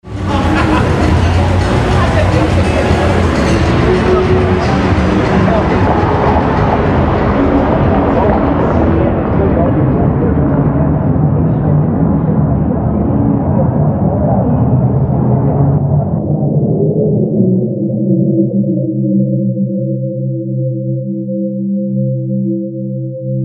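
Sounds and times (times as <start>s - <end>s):
noise turning into pitches: 0.0s - 23.3s
laughter: 0.1s - 8.9s.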